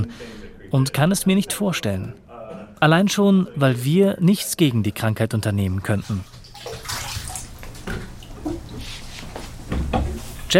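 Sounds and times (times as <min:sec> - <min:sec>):
speech: 0:00.0 - 0:02.2, 0:02.8 - 0:06.9
small water drips: 0:05.7 - 0:08.8
water sloshing and splashing in a barrel: 0:05.7 - 0:09.2.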